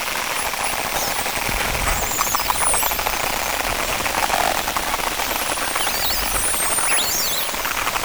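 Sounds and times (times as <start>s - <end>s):
underwater whale high sweeping whistles: 0.2s - 7.9s.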